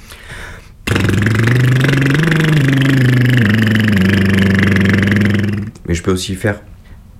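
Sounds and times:
rolled-tongue trill vocal exercise: 0.9s - 5.8s
speech: 6.0s - 6.7s.

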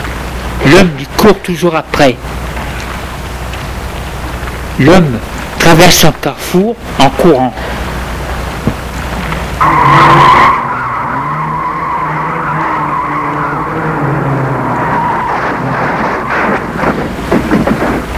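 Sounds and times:
car engine rumble: 0.0s - 18.1s
traffic noise: 0.0s - 18.1s
speech: 0.6s - 2.4s, 4.8s - 7.8s, 9.6s - 10.2s
car braking hard with tire screech: 9.6s - 17.2s
wind buffeting the microphone: 15.7s - 18.1s.

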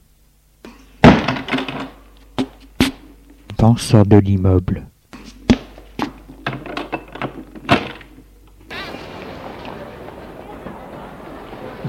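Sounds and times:
door being closed by a concierge: 1.0s - 2.0s
speech: 3.6s - 4.9s
laughter: 8.7s - 11.8s.

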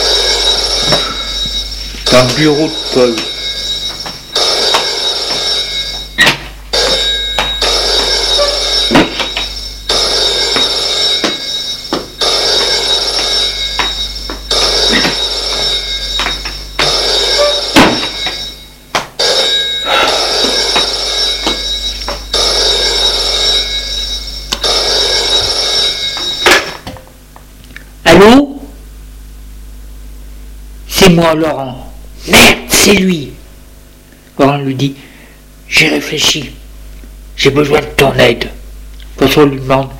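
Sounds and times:
telephone bell ringing in an office: 0.0s - 26.9s
speech: 2.1s - 3.3s, 31.1s - 33.3s, 34.6s - 35.0s, 35.8s - 36.6s, 37.4s - 38.6s, 39.2s - 39.9s.

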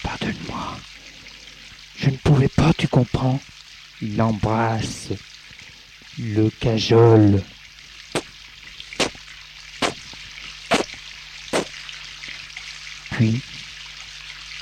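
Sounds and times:
shower water running: 0.0s - 14.5s
speech: 2.0s - 5.3s, 6.2s - 7.6s, 13.2s - 13.6s
splashing taps: 8.1s - 12.8s.

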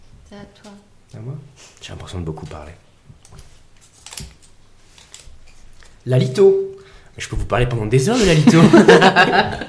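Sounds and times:
speech: 0.3s - 3.5s, 6.0s - 9.6s
small folded paper slip rustling and crinkling as it is drawn and unfolded: 3.2s - 6.0s
laughter: 8.2s - 9.6s.

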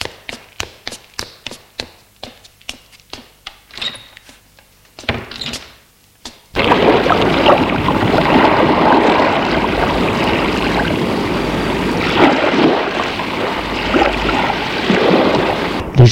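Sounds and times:
sea waves washing in: 6.6s - 16.0s.

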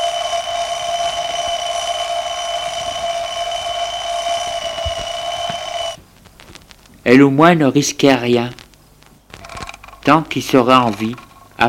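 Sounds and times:
alarm clock ringing with metallic bell tone: 0.0s - 6.0s
faint room noise: 2.5s - 11.6s
speech: 7.1s - 8.6s, 10.1s - 11.6s.

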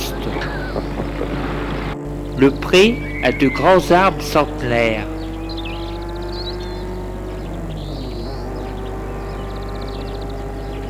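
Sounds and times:
laughter: 0.0s - 4.6s
birds chirping: 0.0s - 10.8s
car driving fast on gravel path: 0.0s - 10.8s
speech: 2.4s - 5.1s.

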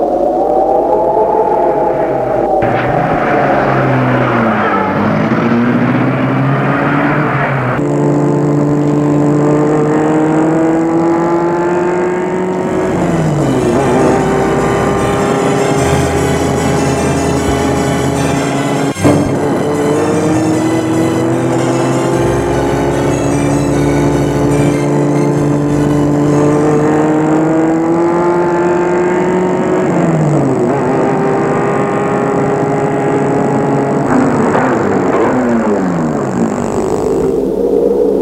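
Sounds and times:
car engine droning with gear changes: 0.0s - 38.1s.

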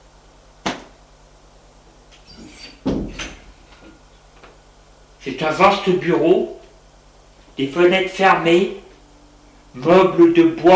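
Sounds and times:
door opening and closing as people enter: 2.2s - 4.0s
speech: 5.2s - 6.6s, 7.6s - 8.8s, 9.8s - 10.7s.

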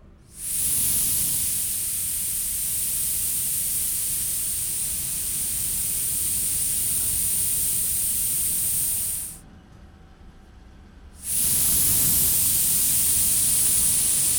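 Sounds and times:
tyre inflation station: 0.3s - 9.4s, 11.2s - 14.3s.

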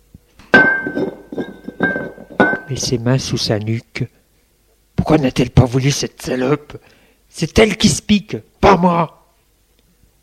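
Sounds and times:
glass beer bottle set down on a floor: 0.4s - 2.7s
speech: 2.7s - 4.2s, 5.0s - 9.2s.

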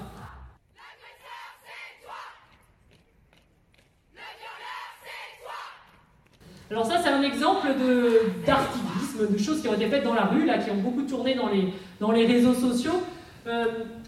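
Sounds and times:
crowd of young people chanting in unison at a street march: 0.0s - 2.6s, 4.1s - 5.9s
speech: 6.7s - 14.0s.

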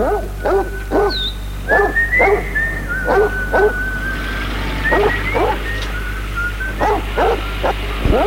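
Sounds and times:
dogs barking while searching for food in rubbish: 0.0s - 8.2s
steady low hum: 0.0s - 8.2s.

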